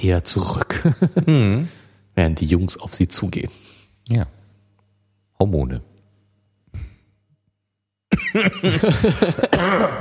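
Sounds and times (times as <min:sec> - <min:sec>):
speech: 0:00.0 - 0:04.4, 0:05.4 - 0:05.9, 0:08.4 - 0:09.9
person coughing: 0:08.1 - 0:09.9
laughter: 0:08.3 - 0:09.9.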